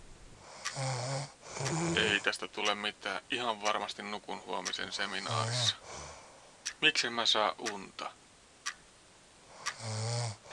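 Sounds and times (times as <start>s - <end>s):
person snoring lying next to the listener: 0.6s - 2.3s, 5.2s - 6.2s, 9.6s - 10.5s
speech: 1.6s - 6.1s, 6.8s - 8.2s, 9.8s - 10.2s.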